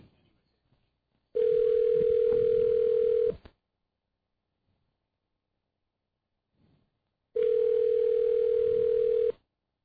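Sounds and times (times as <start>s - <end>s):
telephone ringback tone on the line: 1.4s - 3.4s, 7.4s - 9.4s.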